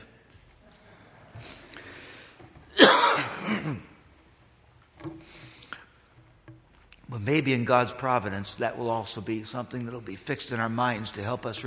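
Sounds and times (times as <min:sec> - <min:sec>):
speech: 0:01.4 - 0:01.6, 0:07.2 - 0:11.6
person coughing: 0:02.7 - 0:04.0.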